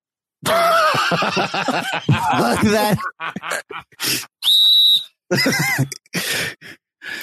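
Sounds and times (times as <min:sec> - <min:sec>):
laughter: 0:00.4 - 0:04.1, 0:05.3 - 0:06.1
speech: 0:00.4 - 0:04.3, 0:05.3 - 0:07.2
shrill whistle blast: 0:04.4 - 0:05.2.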